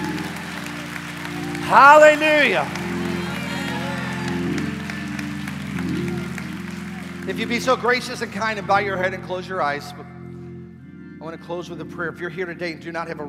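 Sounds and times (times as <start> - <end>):
audience clapping: 0.0 - 8.7
sustained organ-like tones: 0.0 - 13.2
speech: 1.7 - 3.1, 7.3 - 10.2, 11.2 - 13.2.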